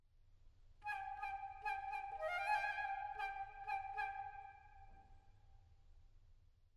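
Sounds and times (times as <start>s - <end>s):
transverse flute playing a wren motif: 0.9s - 4.9s.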